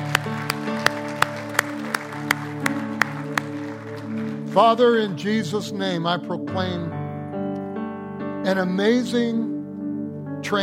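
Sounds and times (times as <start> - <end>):
audience clapping in rhythm: 0.0 - 5.6
sustained keyboard or organ chords: 0.0 - 10.6
speech: 4.6 - 7.0, 8.4 - 9.5, 10.4 - 10.6.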